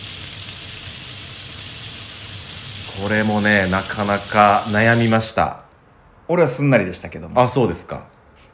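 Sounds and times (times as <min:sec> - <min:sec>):
food deep-frying in hot oil: 0:00.0 - 0:05.2
speech: 0:03.0 - 0:05.6, 0:06.3 - 0:08.1.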